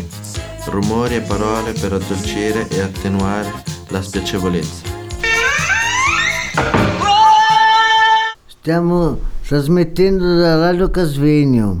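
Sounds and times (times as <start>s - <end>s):
speech: 0.7s - 4.9s, 8.6s - 11.7s
flamingo honking calls: 5.1s - 8.4s.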